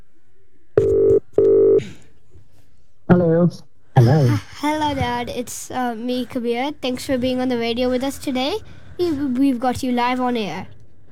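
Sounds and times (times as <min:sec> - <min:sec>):
electronic telephone dialing tones: 0:00.8 - 0:01.8
speech: 0:03.1 - 0:10.8.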